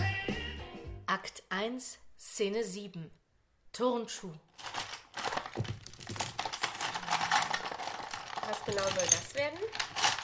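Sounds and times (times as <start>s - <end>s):
speech: 1.2s - 3.2s, 3.8s - 4.7s, 5.6s - 5.8s, 8.7s - 10.1s
pens being unpacked and clattering: 4.5s - 10.2s.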